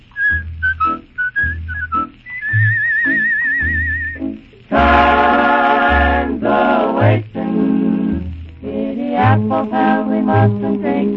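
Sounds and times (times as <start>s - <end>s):
low musical accompaniment: 0.0s - 11.1s
melodic whistling of a cowboy tune: 0.1s - 4.4s.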